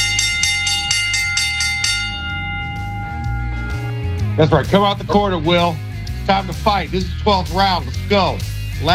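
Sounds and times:
boxing ring bell clanging with bright metallic strikes: 0.0s - 4.2s
speech: 4.4s - 8.9s.

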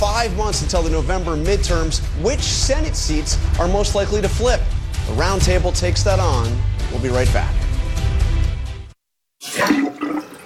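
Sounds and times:
speech: 0.2s - 7.6s
toilet flushing: 9.4s - 10.4s
water gurgling and draining: 9.4s - 10.4s.

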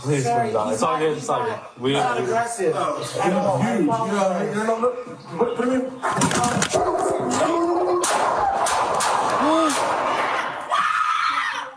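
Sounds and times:
people talking and calling out: 0.0s - 8.7s
people shouting frantically: 6.9s - 11.7s
gunshots from a police officer's gun: 8.0s - 10.7s.

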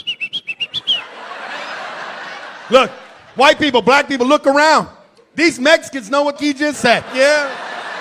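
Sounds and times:
person whistling a quick shrill call: 0.0s - 1.1s
laughter: 0.6s - 4.3s, 6.5s - 8.0s
speech: 2.7s - 7.6s.

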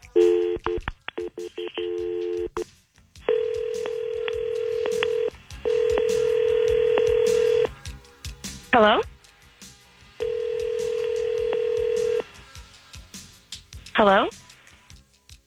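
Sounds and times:
telephone keypad tones placing a three-way call: 0.2s - 2.6s, 3.3s - 7.7s, 10.2s - 12.2s
speech: 14.0s - 14.3s.

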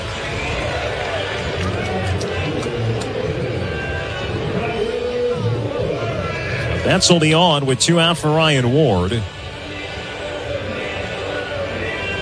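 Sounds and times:
large stadium crowd cheering and babbling after a base hit: 0.0s - 12.1s
speech: 6.9s - 9.4s.

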